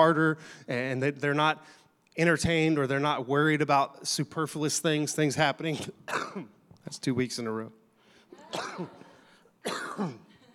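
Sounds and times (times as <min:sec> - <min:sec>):
speech: 0:00.0 - 0:07.8, 0:08.5 - 0:09.0, 0:09.6 - 0:10.2
man coughing: 0:05.8 - 0:06.6, 0:08.4 - 0:10.4.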